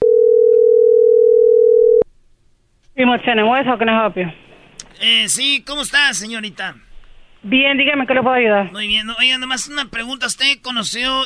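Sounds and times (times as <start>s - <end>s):
telephone dial tone on an outgoing call: 0.0s - 2.0s
speech: 3.0s - 4.4s, 5.0s - 11.2s.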